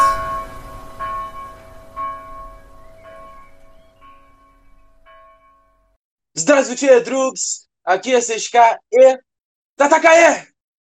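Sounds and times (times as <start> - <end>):
bell ringing with bright metallic tones: 0.0 - 6.0
speech: 6.4 - 10.5.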